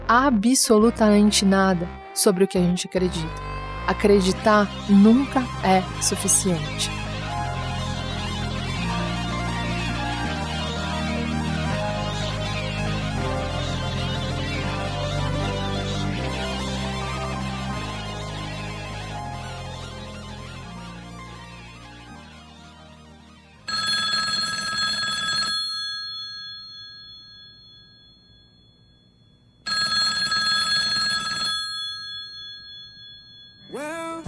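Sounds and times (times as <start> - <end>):
soft music: 0.0 - 25.8
speech: 0.1 - 7.0
telephone bell ringing: 23.7 - 33.8.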